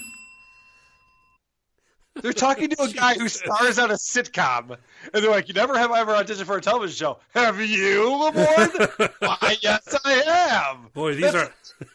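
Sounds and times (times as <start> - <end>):
single bright bell rung to answer a question in a game: 0.0 - 1.4
laughter: 2.2 - 3.8, 8.2 - 10.2
speech: 2.2 - 11.9.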